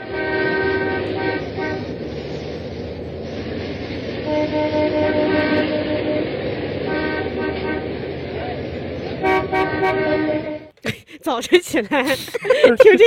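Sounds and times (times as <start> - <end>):
car horns honking in a traffic jam: 0.0 - 2.1, 4.2 - 8.2, 9.1 - 10.8
low rumble of traffic in a traffic jam: 0.0 - 13.0
laughter: 10.8 - 13.0
speech: 11.2 - 13.0.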